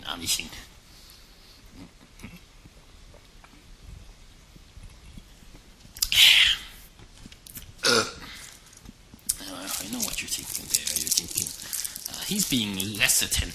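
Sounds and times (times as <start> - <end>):
speech: 0.1 - 0.7, 12.3 - 13.5
person belching: 7.8 - 8.2.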